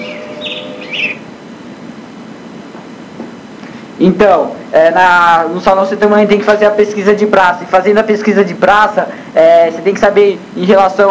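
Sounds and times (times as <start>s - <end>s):
bird chirps: 0.0s - 1.3s
low hum: 0.0s - 11.0s
speech: 4.0s - 11.0s.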